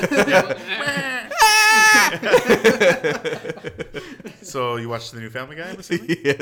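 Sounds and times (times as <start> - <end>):
speech: 0.0 - 1.1, 1.8 - 6.4
laughter: 0.0 - 4.9, 5.5 - 6.4
person imitating goat-like raptor scream from a video game: 1.3 - 2.2.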